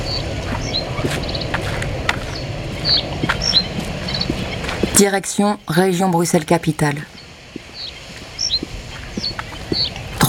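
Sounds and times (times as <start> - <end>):
hooves of a herd of horses clopping while grazing in a field: 0.0 - 5.1, 7.5 - 10.2
high bird chirps: 0.0 - 6.1, 7.0 - 10.1
low outdoor rumble: 0.0 - 10.2
speech: 2.8 - 3.4, 5.0 - 7.2.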